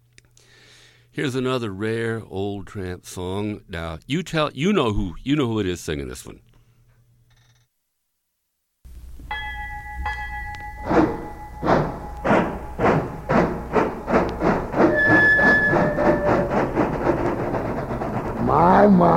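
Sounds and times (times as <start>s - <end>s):
speech: 1.2s - 6.5s
train chugging along the rails: 9.6s - 19.1s
sustained whistle-like tones: 14.8s - 16.6s.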